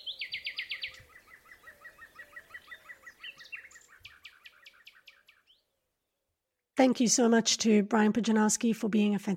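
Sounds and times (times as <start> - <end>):
birds singing: 0.0 - 6.4
speech: 6.8 - 9.3.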